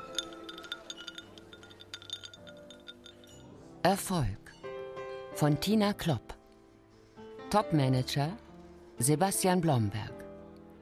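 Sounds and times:
glasses clinking in a toast: 0:00.0 - 0:03.6
speech: 0:03.8 - 0:04.4, 0:05.4 - 0:06.4, 0:07.5 - 0:08.4, 0:09.0 - 0:10.1.

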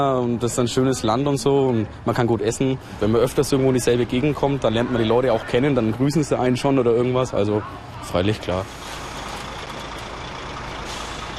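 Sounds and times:
speech: 0:00.0 - 0:09.0
heavy truck idling and manoeuvring under transport containers: 0:00.0 - 0:11.3
truck air-brake release: 0:10.8 - 0:11.3.

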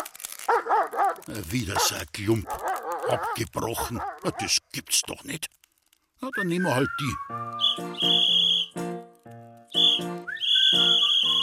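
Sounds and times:
speech: 0:00.6 - 0:05.6, 0:06.2 - 0:08.9, 0:10.0 - 0:11.0
dog whistle blown in shrill piercing blasts: 0:07.2 - 0:08.8, 0:09.7 - 0:11.4.

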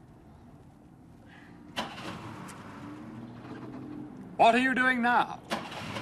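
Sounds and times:
car engine starting and idling in the open air: 0:01.7 - 0:04.7, 0:05.3 - 0:06.0
speech: 0:04.4 - 0:05.5.

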